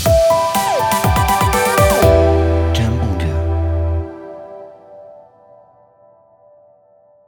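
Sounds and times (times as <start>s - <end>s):
corporate ident jingle: 0.1s - 5.1s.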